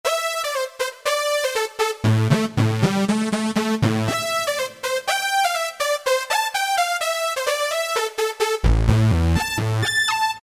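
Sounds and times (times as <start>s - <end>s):
synthesizer keyboard: 0.1s - 10.4s.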